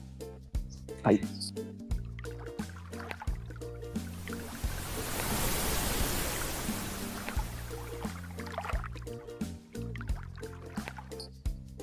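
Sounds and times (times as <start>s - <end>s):
upbeat music: 0.7s - 11.3s
speech: 1.0s - 1.8s
ocean wave breaking: 4.0s - 8.8s.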